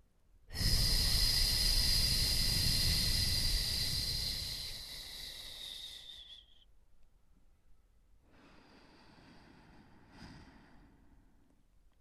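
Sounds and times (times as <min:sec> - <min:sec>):
long strong relaxed belly breath out: 0:00.5 - 0:06.4, 0:08.3 - 0:11.4.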